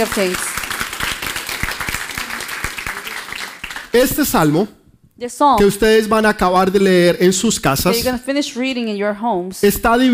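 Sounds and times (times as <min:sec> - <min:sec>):
speech: 0:00.0 - 0:00.5, 0:03.9 - 0:10.1
crowd applauding loudly: 0:00.0 - 0:04.4.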